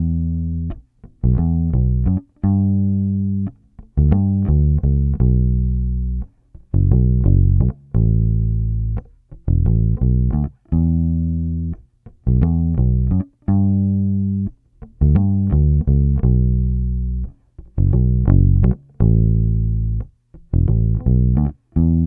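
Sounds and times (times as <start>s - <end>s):
87 Cm electric bass loop: 0.0s - 22.0s.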